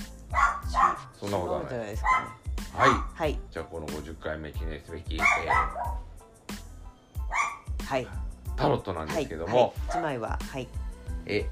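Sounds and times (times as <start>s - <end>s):
dog barking: 0.3s - 1.2s, 2.0s - 3.2s, 5.2s - 6.1s, 7.2s - 7.8s
speech: 1.2s - 6.1s, 7.9s - 11.5s.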